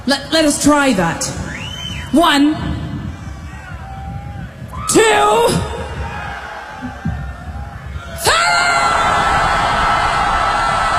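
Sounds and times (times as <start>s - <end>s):
speech: 0.0s - 1.4s, 2.1s - 2.8s, 4.9s - 5.7s
audience screaming loudly: 3.1s - 10.9s.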